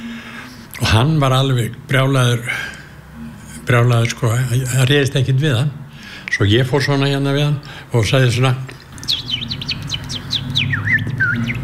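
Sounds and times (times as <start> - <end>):
steady low hum: 0.0 - 11.6
speech: 0.9 - 2.8, 3.7 - 8.8
person imitating bird chirps: 9.0 - 11.6.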